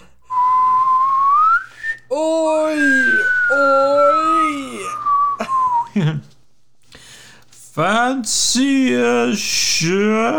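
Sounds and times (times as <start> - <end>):
voice imitating a slow wolf whistle: 0.3 - 5.9
speech: 7.8 - 10.3.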